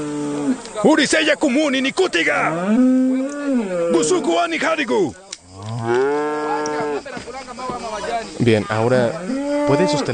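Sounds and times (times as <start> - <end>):
speech: 0.0 - 5.2, 8.2 - 10.1
cow mooing: 2.4 - 4.2, 5.6 - 7.0, 9.2 - 10.1.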